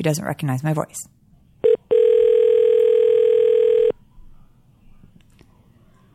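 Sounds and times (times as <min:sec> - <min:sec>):
speech: 0:00.0 - 0:01.2
telephone beep: 0:01.6 - 0:03.9.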